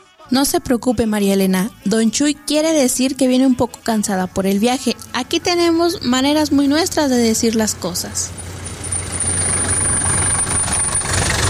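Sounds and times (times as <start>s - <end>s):
speech: 0.3s - 8.4s
broadband road noise: 1.5s - 11.4s
car engine running in traffic: 4.2s - 11.4s.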